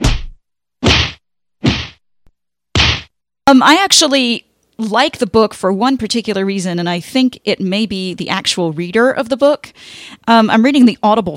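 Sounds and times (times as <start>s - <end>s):
loud slaps: 0.0s - 2.0s, 2.7s - 3.1s
speech: 3.5s - 11.3s.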